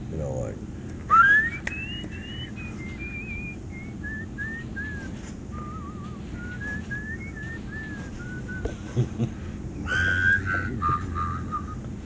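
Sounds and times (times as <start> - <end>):
person whistling a meandering melody: 1.1 - 9.0, 9.8 - 11.8
laughter: 1.1 - 12.0
speech: 9.0 - 9.4.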